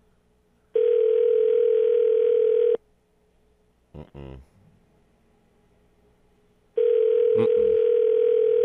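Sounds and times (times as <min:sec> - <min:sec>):
phone line ringback tones: 0:00.8 - 0:02.8, 0:06.8 - 0:08.6.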